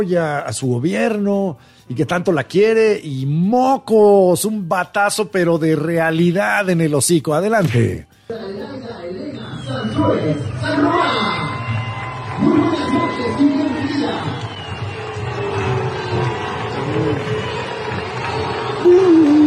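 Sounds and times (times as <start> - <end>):
speech: 0.0 - 9.2, 9.8 - 11.4, 12.4 - 14.6, 17.0 - 17.5
stadium crowd in Campeche booing and shouting at the state governor: 9.8 - 19.4.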